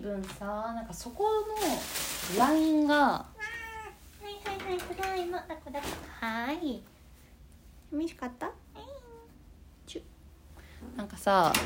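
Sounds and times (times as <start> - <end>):
speech: 0.0 - 3.4, 4.2 - 6.9, 7.9 - 9.0, 9.9 - 10.1, 10.8 - 11.6
low hum: 0.0 - 11.6
cat meowing after a fall: 3.3 - 4.0.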